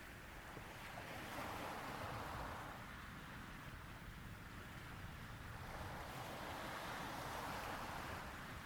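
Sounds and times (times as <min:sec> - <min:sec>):
ocean waves washing ashore on a warm summer day: 0:00.0 - 0:08.6.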